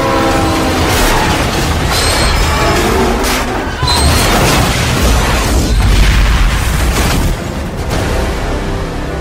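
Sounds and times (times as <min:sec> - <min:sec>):
train horn blaring: 0:00.0 - 0:02.9
train rumbling on tracks leaving a station: 0:00.0 - 0:08.7.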